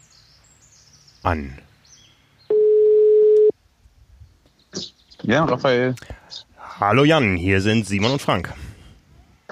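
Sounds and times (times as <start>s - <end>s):
speech: 1.2s - 1.7s, 4.8s - 8.6s
telephone ringback tone of an outgoing call: 2.5s - 3.5s.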